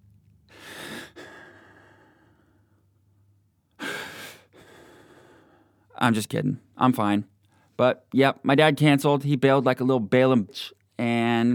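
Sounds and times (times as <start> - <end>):
heavy breathing: 0.5 - 3.0, 3.8 - 5.9
speech: 6.0 - 11.5.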